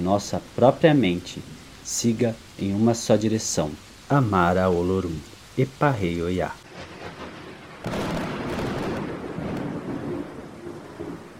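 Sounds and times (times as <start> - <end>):
speech: 0.0 - 6.6
steady hiss of rain in a thunderstorm: 0.0 - 11.3
rolling thunder in a thunderstorm: 6.6 - 11.3.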